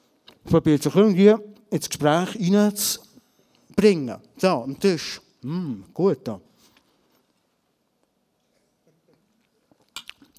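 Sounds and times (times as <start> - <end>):
speech: 0.5 - 3.1, 3.8 - 6.5
person chewing food: 9.1 - 10.3.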